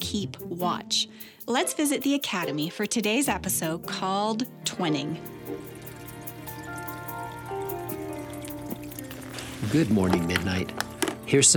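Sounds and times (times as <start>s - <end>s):
speech: 0.1s - 5.7s, 9.7s - 11.5s
aquarium water trickling and dripping: 4.9s - 11.5s
small splashy plinks in an aquarium: 5.3s - 11.5s.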